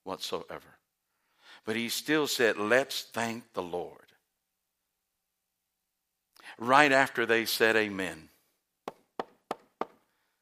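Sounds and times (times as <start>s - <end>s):
speech: 0.1s - 0.8s, 1.5s - 4.0s, 6.5s - 8.3s
knocking on a door: 8.9s - 10.0s.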